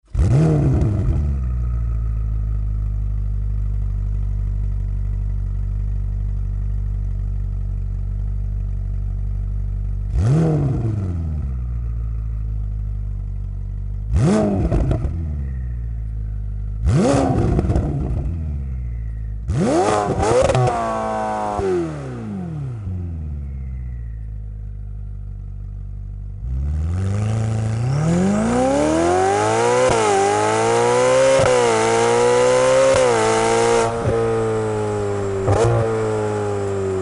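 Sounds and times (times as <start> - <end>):
Ferrari F8 Tributo engine: 0.0 - 37.0.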